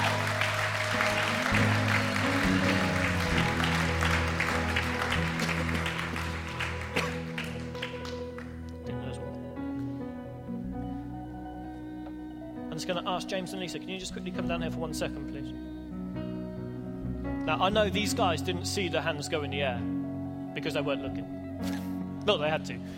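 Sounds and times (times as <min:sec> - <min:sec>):
church audience clapping: 0:00.0 - 0:08.9
sustained keyboard music: 0:00.0 - 0:22.9
speech: 0:12.9 - 0:15.8, 0:17.5 - 0:20.0, 0:20.6 - 0:22.9.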